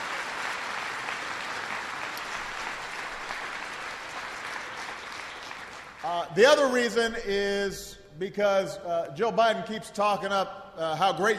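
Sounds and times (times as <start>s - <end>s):
large crowd applauding: 0.0s - 6.8s
speech: 6.0s - 11.3s.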